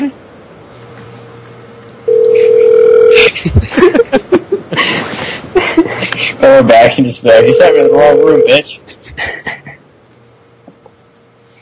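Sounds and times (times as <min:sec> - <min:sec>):
loud steady telephone dial tone on a call to a motel room: 0:02.1 - 0:03.2, 0:07.4 - 0:08.5
person chuckling with choppy vocal noises: 0:02.4 - 0:06.4, 0:08.9 - 0:09.8
speech: 0:03.4 - 0:04.0, 0:06.4 - 0:08.9.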